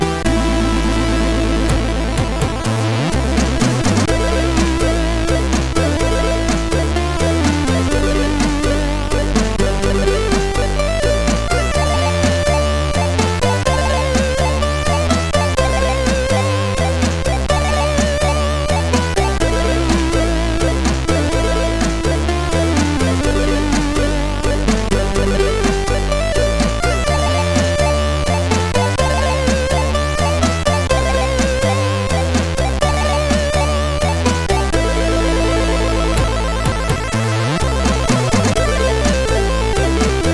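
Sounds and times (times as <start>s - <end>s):
SID MOS6581R3 chip music intro: 0.2s - 40.3s.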